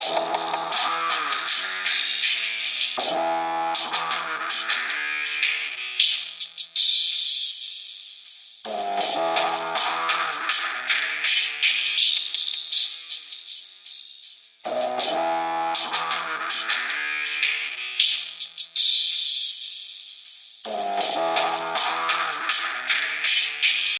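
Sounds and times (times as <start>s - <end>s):
bass: 0.0s - 5.7s, 8.7s - 11.7s, 14.6s - 17.0s, 20.7s - 23.1s
drums: 0.0s - 23.9s.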